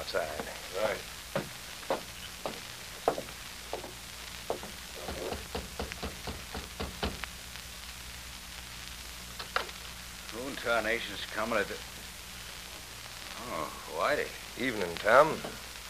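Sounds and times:
speech: 0.1s - 1.2s, 10.7s - 11.9s, 14.0s - 15.6s
heavy knocks pounding on a wooden door: 1.3s - 7.2s.

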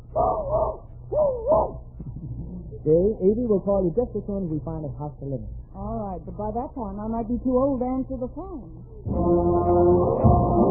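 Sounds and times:
small dog whining and yelping: 0.2s - 1.8s
speech: 2.8s - 10.4s.

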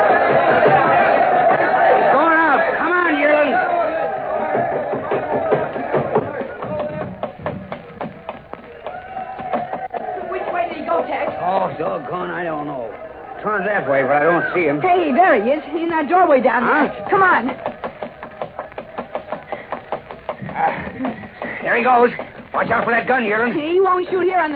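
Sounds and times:
ringside crowd chatter at a wrestling match: 0.0s - 24.5s
sharp knocks and thuds at a wrestling match: 4.5s - 10.2s, 17.1s - 23.2s
speech: 13.6s - 17.7s, 21.8s - 24.5s.

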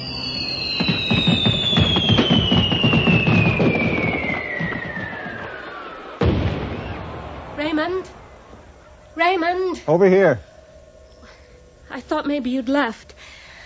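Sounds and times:
firework whistling: 0.0s - 9.2s
speech: 9.6s - 10.5s, 12.0s - 13.3s.

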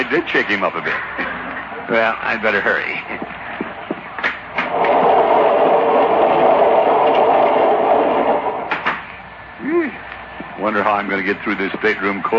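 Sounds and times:
speech: 0.0s - 1.3s, 1.9s - 3.2s, 10.6s - 12.3s
moving passenger train rumbling on rails: 1.1s - 9.4s.

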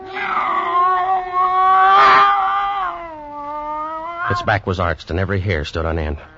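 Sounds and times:
cat yowling: 0.0s - 4.5s
speech: 4.3s - 6.3s.

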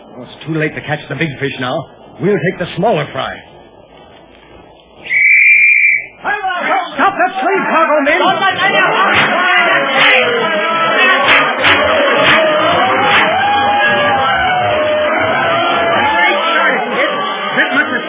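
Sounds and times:
speech: 0.2s - 3.5s
whoops and bellows: 5.0s - 6.1s, 9.9s - 17.4s
crowd shouting while watching a fight: 6.0s - 18.0s.

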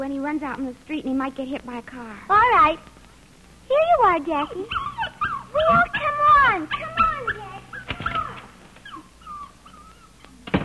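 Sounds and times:
speech: 0.1s - 3.0s, 3.7s - 4.9s, 6.6s - 7.0s
dog whimpering and whining: 4.6s - 10.5s.

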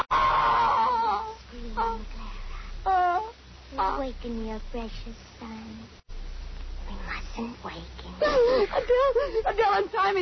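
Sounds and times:
woman screaming: 0.0s - 2.0s
speech: 3.9s - 6.0s, 6.9s - 10.1s.

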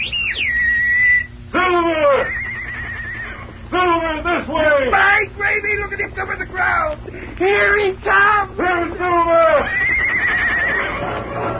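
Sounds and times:
rough noisy background: 0.0s - 11.5s
white stallion whinnying: 2.1s - 3.6s, 9.6s - 11.0s
speech: 4.8s - 9.8s
laughter: 8.9s - 11.5s.

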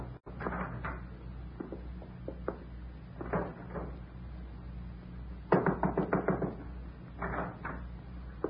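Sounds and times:
steady low hum: 0.0s - 8.4s
wooden door opening and closing: 3.2s - 4.0s, 5.5s - 7.9s.

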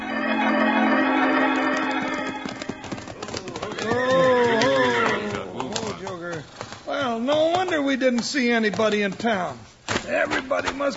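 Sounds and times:
sustained musical tone: 0.0s - 3.6s
horses' hooves clattering to a stop: 1.3s - 9.7s
horse whinnying: 3.2s - 5.4s
speech: 8.0s - 10.9s.

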